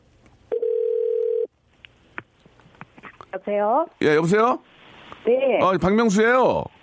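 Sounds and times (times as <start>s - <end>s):
phone call ringback tone: 0.5s - 1.5s
speech: 3.4s - 6.7s.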